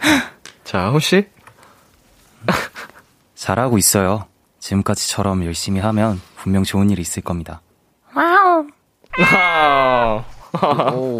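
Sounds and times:
speech: 0.1s - 1.4s, 3.4s - 11.1s
person imitating a cat meow: 9.1s - 10.4s
laughter: 9.2s - 11.1s.

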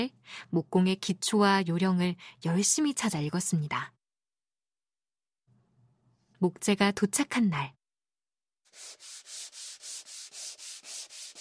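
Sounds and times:
speech: 0.0s - 4.0s, 6.4s - 7.8s
sandpaper scraping across rough wood: 8.7s - 11.3s.

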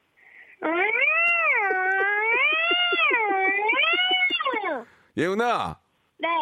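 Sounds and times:
speech: 0.6s - 1.0s, 5.2s - 6.3s
girl imitating an irritated cat yowl: 0.6s - 4.8s.

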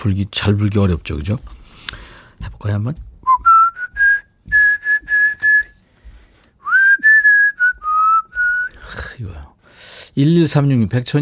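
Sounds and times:
speech: 0.0s - 3.1s, 10.2s - 11.2s
person whistling a clear bright melody: 3.2s - 5.8s, 6.6s - 8.8s.

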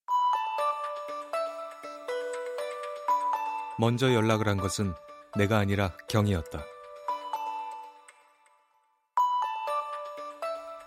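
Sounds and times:
mobile phone ringtone with bright tinkling melodic phrase: 0.1s - 3.8s, 9.2s - 10.8s
speech: 3.8s - 6.7s.

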